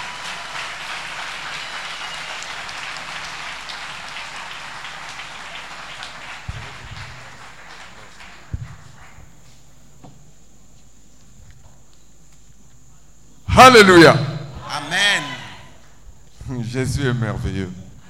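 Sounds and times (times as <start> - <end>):
crowd applauding: 0.0 - 9.6
speech: 13.6 - 14.3, 16.7 - 17.8.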